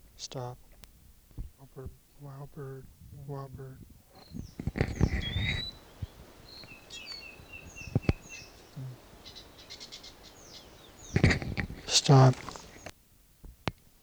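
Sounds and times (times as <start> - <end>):
speech: 0.2 - 0.6, 1.7 - 5.7, 8.8 - 9.0, 12.0 - 12.5
louder rustling knocks: 4.2 - 12.9
wild bird giving short high chirps and thin whistled calls: 4.2 - 12.9.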